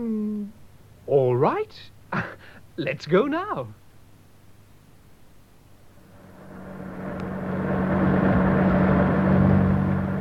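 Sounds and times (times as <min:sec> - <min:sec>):
speech: 0:01.1 - 0:03.8
car engine droning while driving: 0:05.9 - 0:10.1.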